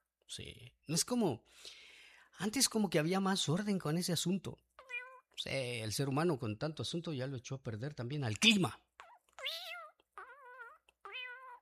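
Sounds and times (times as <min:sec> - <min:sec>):
speech: 0:00.3 - 0:01.8, 0:02.4 - 0:04.7, 0:05.4 - 0:08.8
cat meowing: 0:04.8 - 0:05.4, 0:09.0 - 0:11.5.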